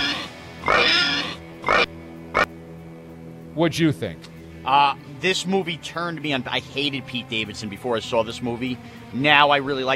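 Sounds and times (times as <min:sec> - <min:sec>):
pig sound effect squealing grunt and oinks: 0:00.0 - 0:02.5
speech: 0:03.6 - 0:09.9.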